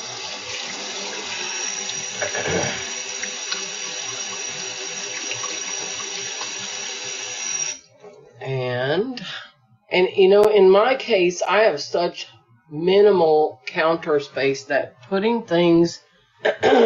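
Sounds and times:
tap water running into a kitchen sink while hands are washed: 0.0s - 7.8s
speech: 2.2s - 2.8s, 10.0s - 16.8s.

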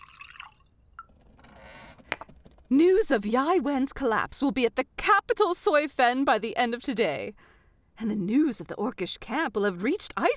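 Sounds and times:
drink pouring into a glass: 0.0s - 1.2s
speech: 2.7s - 10.3s.

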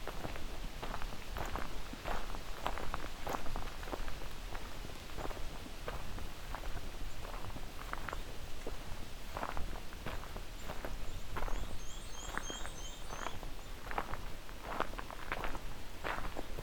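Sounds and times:
footsteps crunching through brush: 0.1s - 16.6s
black-and-white warbler trill at Crane Lake in Bruce Peninsula National Park: 11.5s - 13.4s.

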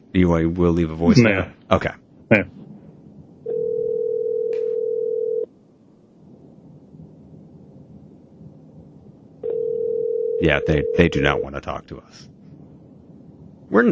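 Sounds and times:
speech: 0.2s - 2.6s, 10.4s - 12.3s, 13.7s - 13.8s
ringback tone of an unanswered outgoing telephone call: 3.5s - 5.5s, 9.4s - 11.4s.

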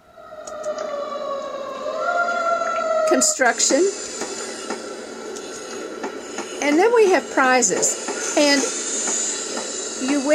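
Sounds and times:
fire truck siren wailing: 0.0s - 4.1s
speech: 3.1s - 4.0s, 6.7s - 8.7s, 10.2s - 10.3s.

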